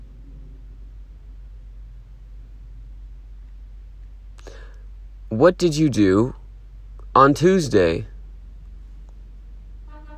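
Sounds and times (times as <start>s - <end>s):
steady low rumble of traffic: 0.0s - 10.1s
speech: 5.3s - 6.4s, 7.2s - 8.1s
truck horn honking: 9.8s - 10.1s.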